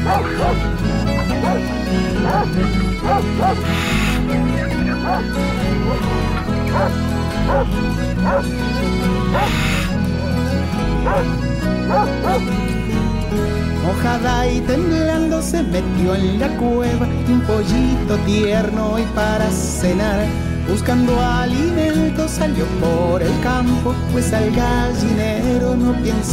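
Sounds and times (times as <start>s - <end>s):
two big dogs barking: 0.0s - 12.9s
song playing: 0.0s - 25.1s
speech: 0.1s - 9.8s, 11.0s - 26.3s.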